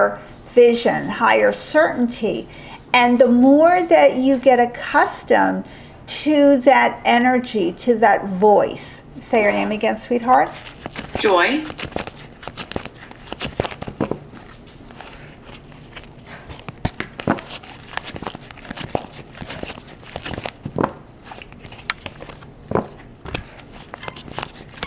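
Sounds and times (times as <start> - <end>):
speech: 0.0 - 12.0
cards pulled from a deck: 10.5 - 24.8.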